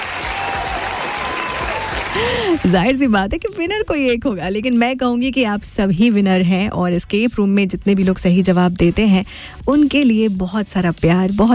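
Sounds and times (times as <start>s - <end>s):
crowd applauding quiz winners: 0.0s - 2.8s
speech: 2.2s - 11.5s.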